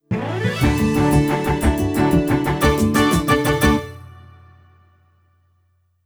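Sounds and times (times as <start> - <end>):
airplane success jingle: 0.2 - 4.6.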